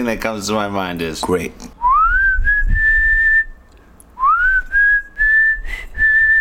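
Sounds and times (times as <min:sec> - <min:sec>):
speech: 0:00.0 - 0:01.7
person whistling a tune: 0:01.8 - 0:03.6, 0:04.2 - 0:06.3.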